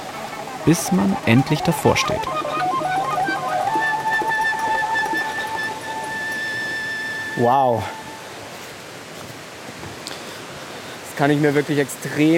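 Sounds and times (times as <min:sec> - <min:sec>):
faint tones: 0:00.0 - 0:08.5
rushing waterfall: 0:00.0 - 0:12.3
speech: 0:00.6 - 0:02.6, 0:07.4 - 0:08.0, 0:11.2 - 0:12.3.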